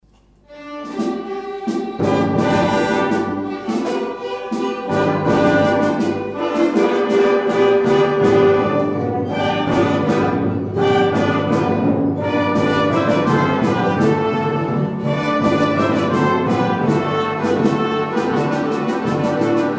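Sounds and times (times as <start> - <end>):
orchestra: 0.3 - 19.7.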